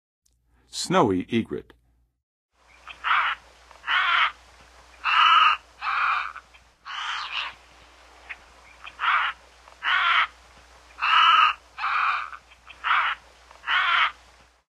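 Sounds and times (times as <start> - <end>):
Snowy Egret calling: 2.6 - 14.3.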